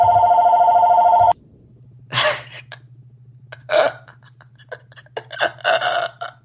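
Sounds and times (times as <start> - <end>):
telephone ringing loudly: 0.0 - 1.4
low hum: 0.0 - 6.4
laughter: 3.6 - 6.4.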